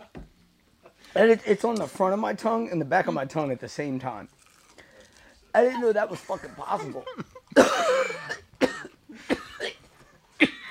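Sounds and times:
speech: 1.2 - 4.4, 5.5 - 8.0
person coughing after eating hot sauce: 6.3 - 10.7.

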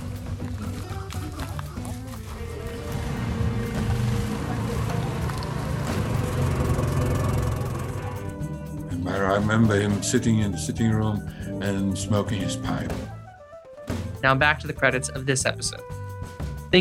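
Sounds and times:
boat's churning wash: 0.9 - 10.6
boat engine drone on water in the jungle: 2.2 - 10.0
speech: 9.3 - 13.2, 14.2 - 16.0.

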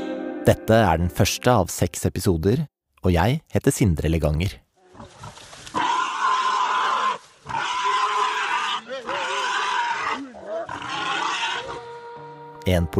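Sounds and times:
speech: 0.5 - 4.6, 12.7 - 12.9
wild boar squealing while attacked by hunting dogs: 4.9 - 12.6
large hunting dogs snarling: 7.5 - 12.0.

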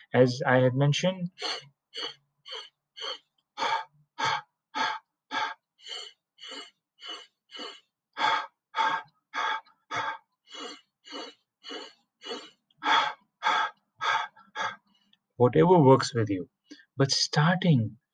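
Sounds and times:
speech: 0.1 - 4.4, 15.4 - 18.0
quick forceful inhales and exhales of a breathing exercise: 1.3 - 15.2.

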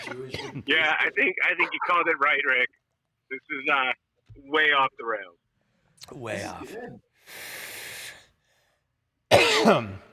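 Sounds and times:
breathy rasping throat clearing: 0.0 - 0.7
loud harsh cough with a rough voiced tail: 0.0 - 0.8, 9.3 - 10.1
speech: 0.1 - 5.4, 6.0 - 7.6, 9.3 - 10.1.

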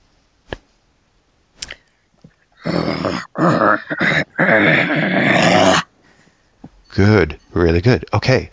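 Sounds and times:
breaths: 1.6 - 2.1, 5.9 - 6.7
person imitating a monster straining to push a heavy rock: 2.6 - 5.9
speech: 3.4 - 5.8, 7.0 - 8.5.

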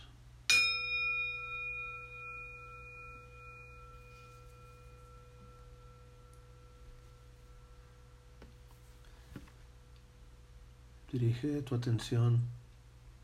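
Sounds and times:
faint steady hum: 0.0 - 13.2
meditation bell ringing: 0.5 - 8.4
speech: 11.1 - 12.6.

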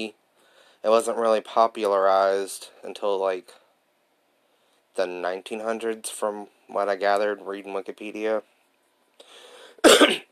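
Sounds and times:
speech: 0.0 - 0.2, 0.8 - 3.6, 5.0 - 8.5
soft hiss of noise: 0.0 - 10.3
sharp loud cough: 9.8 - 10.3.

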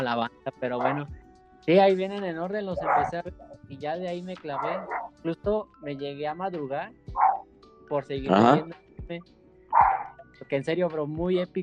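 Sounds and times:
speech: 0.0 - 7.2, 7.9 - 11.6
dogs barking in the neighborhood: 0.8 - 1.1, 2.7 - 3.3, 4.5 - 5.1, 7.1 - 7.4, 9.7 - 10.2.

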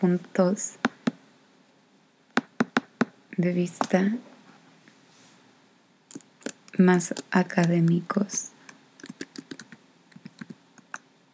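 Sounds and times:
speech: 0.0 - 0.9, 3.4 - 4.3, 6.8 - 8.6
typing on a computer keyboard to unlock a computer: 6.1 - 8.0, 9.0 - 11.0.

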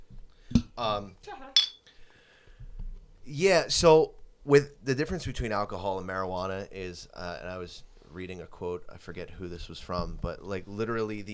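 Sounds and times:
speech: 0.8 - 1.6, 3.2 - 11.3
beer bottles clinking in a toast: 1.6 - 1.9.

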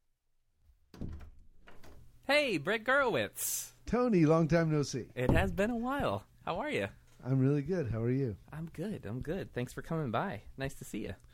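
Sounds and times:
door opening with a thunk: 0.9 - 2.1, 5.2 - 6.0
speech: 2.3 - 11.3.

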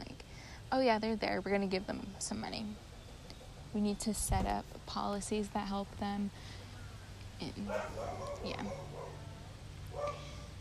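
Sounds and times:
low steady hum: 0.0 - 10.6
speech: 0.7 - 2.9, 3.7 - 6.6, 7.4 - 9.2
dog barking: 7.7 - 10.5.

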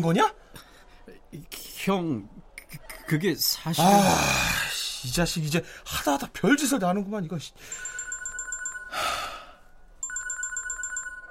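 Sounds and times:
speech: 0.0 - 2.4, 3.1 - 7.9
phone ringing with rapid electronic trills: 7.7 - 11.2
breathy sigh-like noise: 8.9 - 9.6.

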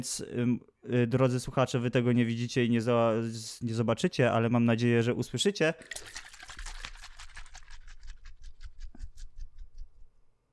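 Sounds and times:
speech: 0.0 - 6.3
shaken carbonated yerba mate cola fizzing: 5.8 - 8.6.

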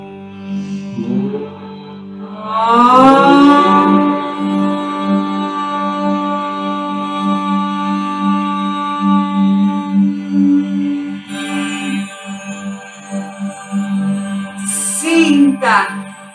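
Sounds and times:
single voice chanting a sustained vowel tone during a guided breathing meditation: 0.5 - 12.1, 14.6 - 16.0.

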